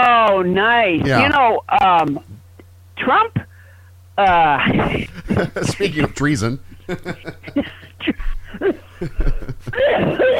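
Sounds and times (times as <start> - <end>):
speech: 0.0 - 2.4, 3.0 - 3.5, 4.2 - 10.3
laughter: 4.7 - 10.3
person with a chronic cough in a coughing fit: 7.0 - 10.3.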